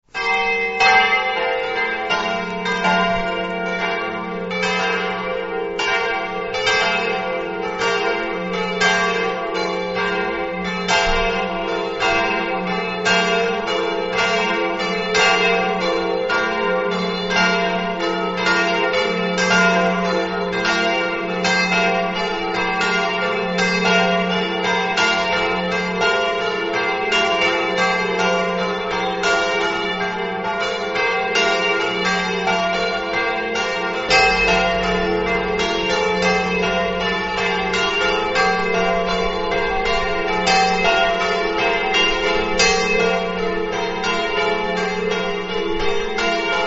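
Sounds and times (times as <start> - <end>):
bells ringing in Avasinis: 0.1 - 46.6.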